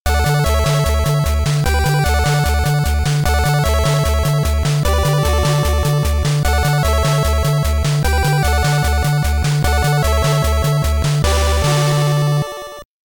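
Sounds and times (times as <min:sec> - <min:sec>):
chiptune level clear jingle from an NES game: 0:00.1 - 0:12.8.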